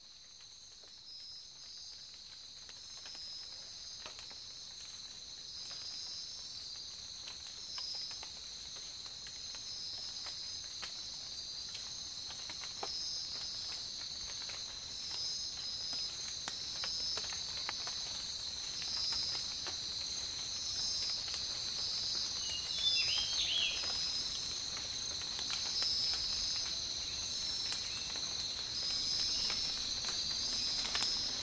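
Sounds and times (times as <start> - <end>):
tropical rain: 0.0 - 31.4.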